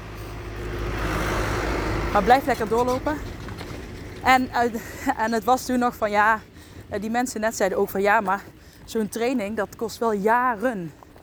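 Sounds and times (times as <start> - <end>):
car passing by with road rumble and tire hiss: 0.0 - 4.9
speech: 2.1 - 3.3, 4.2 - 11.0.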